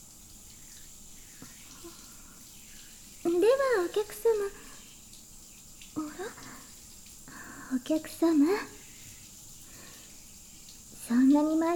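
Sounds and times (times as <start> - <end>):
hot water running from a tap: 0.0 - 11.7
speech: 3.8 - 4.6, 7.8 - 8.8, 11.1 - 11.7.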